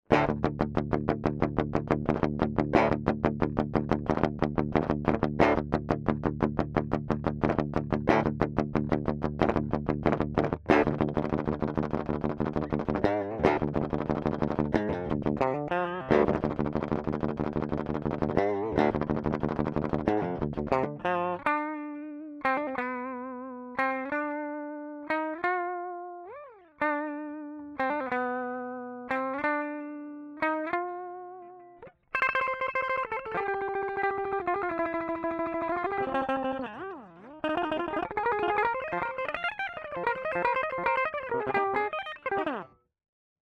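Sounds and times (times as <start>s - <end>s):
DiMarzio Evo guitar pickup tone: 0.1s - 42.8s.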